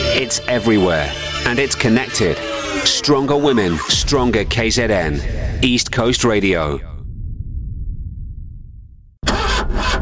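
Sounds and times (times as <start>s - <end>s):
speech: 0.2s - 6.9s
car engine cranking but failing to start: 9.2s - 9.9s.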